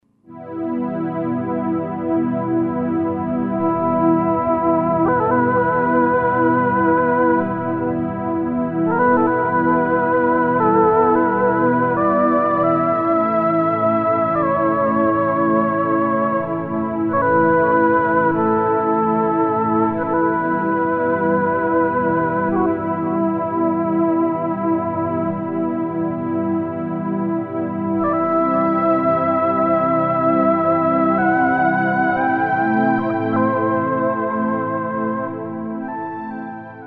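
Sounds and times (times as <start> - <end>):
Roland JV-2080 synthesizer pad and lead: 0.3 - 36.8.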